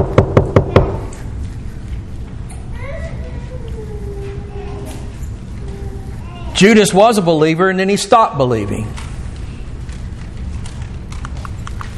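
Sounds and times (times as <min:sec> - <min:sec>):
knocking on a door: 0:00.0 - 0:01.0
speech: 0:06.6 - 0:09.1.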